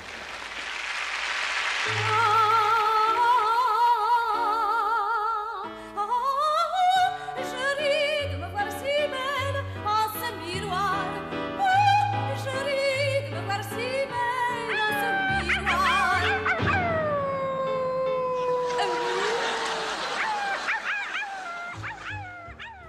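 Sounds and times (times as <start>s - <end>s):
speech: 1.8s - 2.2s
exaggerated caricatured operatic soprano from an animated cartoon singing: 1.9s - 19.8s
laughter: 18.2s - 22.6s.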